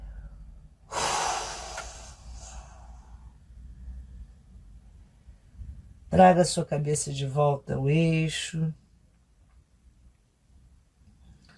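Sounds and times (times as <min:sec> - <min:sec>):
forceful exhale after holding the breath during a breathing exercise: 0:00.9 - 0:03.4
speech: 0:06.1 - 0:08.8.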